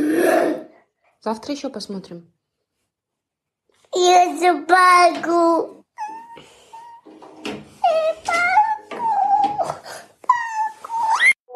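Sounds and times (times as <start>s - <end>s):
speech: 1.2s - 2.4s, 3.9s - 5.8s
small child crying and wailing after a cartoon is switched off: 6.0s - 7.1s, 7.8s - 11.4s.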